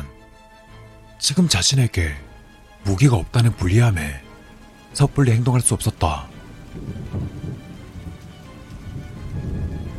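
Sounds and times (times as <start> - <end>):
heavy rain downpour: 0.0 - 9.9
speech: 1.2 - 2.3, 2.9 - 4.2, 5.0 - 7.7
deep rolling thunder during a heavy rainstorm: 6.4 - 9.9.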